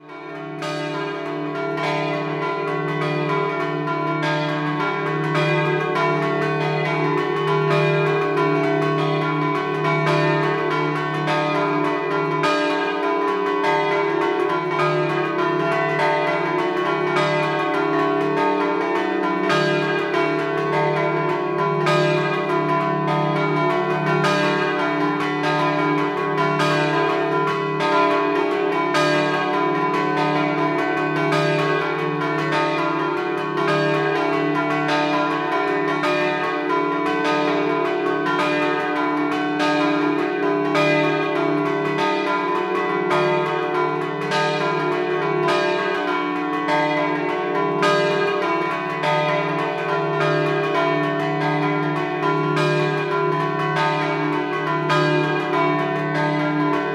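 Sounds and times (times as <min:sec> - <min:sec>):
church bells ringing: 0:00.0 - 0:56.9.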